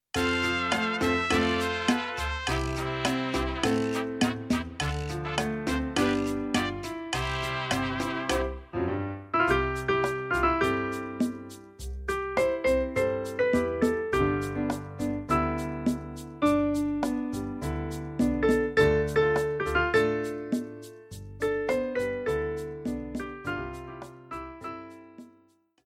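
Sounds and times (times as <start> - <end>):
tropical rhythm music: 0.0 - 8.8, 9.4 - 24.4.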